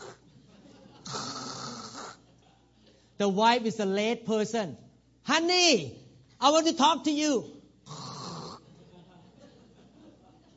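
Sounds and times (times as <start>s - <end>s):
laughter: 0.2s - 1.2s, 2.0s - 3.0s, 8.6s - 10.5s
man snoring: 1.1s - 2.2s, 7.9s - 8.6s
speech: 3.2s - 8.0s.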